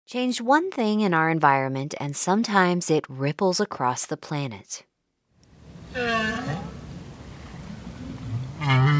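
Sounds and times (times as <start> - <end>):
speech: 0.1 - 4.9, 5.9 - 6.7, 8.6 - 8.9
North Atlantic right whale calls: 5.9 - 8.9.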